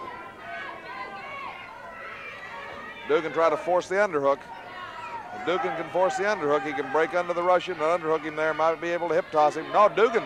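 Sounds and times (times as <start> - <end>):
large arena crowd roaring: 0.0 - 10.2
speech: 3.1 - 4.6, 5.4 - 10.2.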